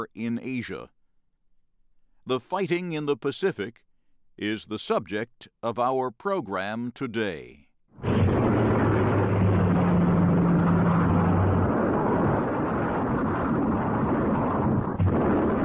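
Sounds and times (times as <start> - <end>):
speech: 0.0 - 1.0, 2.3 - 8.1
Japanese aircraft engines droning over Pearl Harbor: 8.0 - 14.5
bombs exploding at the American naval base at Pearl Harbor, Hawaii: 8.0 - 15.6.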